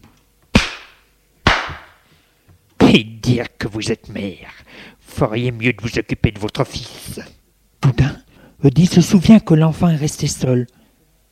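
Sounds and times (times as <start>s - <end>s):
sharp stinging slaps across the face: 0.5s - 2.0s
speech: 2.9s - 10.8s.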